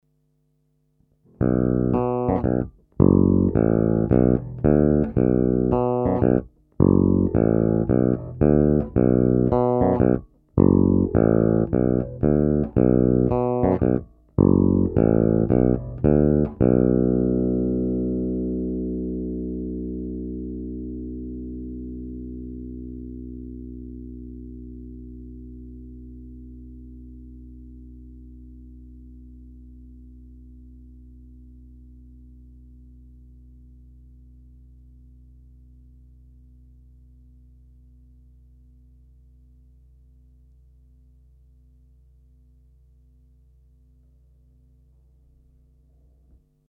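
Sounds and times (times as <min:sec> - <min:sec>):
bass guitar through a bridge pickup: 0:01.2 - 0:42.0.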